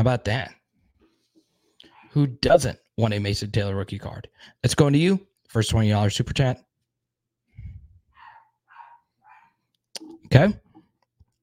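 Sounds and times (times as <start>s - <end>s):
speech: 0.0s - 0.6s, 2.1s - 6.7s, 10.3s - 10.6s
dog barking: 8.2s - 9.6s.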